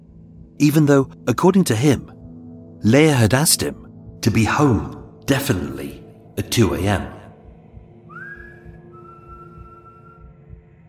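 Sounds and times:
speech: 0.6s - 2.2s, 2.8s - 7.2s
person whistling up toward a window outside a locked street door: 8.1s - 10.3s.

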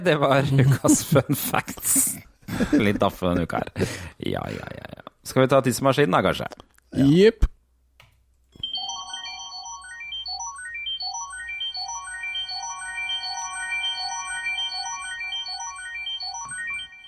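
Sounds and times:
speech: 0.0s - 7.5s
shrill electronic podcast segment jingle with chime-like notes: 8.6s - 17.0s.

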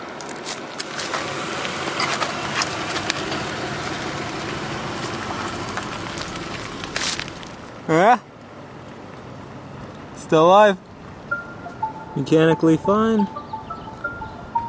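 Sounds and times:
gritty tire crunching on rough ground: 0.0s - 11.2s
car engine rumble rolling slowly over rough ground: 0.0s - 14.6s
scattered crackles: 0.1s - 7.8s
speech: 7.9s - 8.3s, 10.3s - 10.9s, 12.2s - 13.4s.

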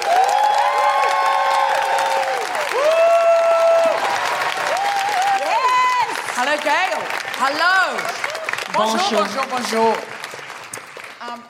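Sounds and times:
whoops and cheering voices: 0.0s - 6.3s
audience applauding: 0.0s - 11.4s
speech: 6.6s - 10.1s.

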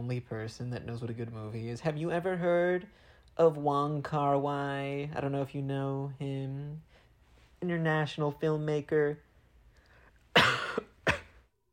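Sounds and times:
speech: 0.0s - 6.9s, 7.6s - 9.3s
person sneezing: 10.3s - 11.5s.

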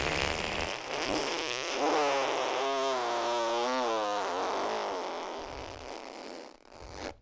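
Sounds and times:
voice imitating a long fart with the mouth: 0.0s - 7.2s.

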